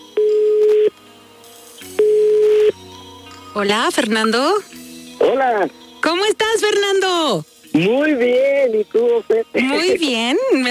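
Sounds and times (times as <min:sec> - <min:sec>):
telephone line tones while a call is being placed: 0:00.2 - 0:01.0, 0:01.9 - 0:02.8
speech: 0:03.6 - 0:10.6.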